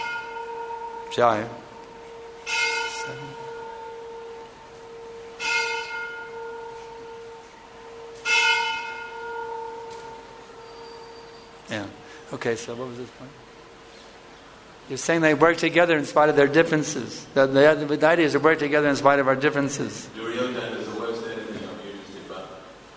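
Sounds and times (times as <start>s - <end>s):
electric bell ringing: 0.0s - 12.2s
speech: 1.1s - 1.7s, 3.1s - 3.4s, 11.7s - 13.5s, 14.9s - 20.5s.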